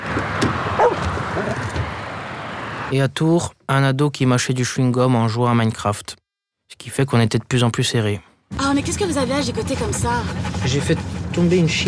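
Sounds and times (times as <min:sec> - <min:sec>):
dog yipping and whimpering: 0:00.8 - 0:01.7
speech: 0:02.9 - 0:11.8.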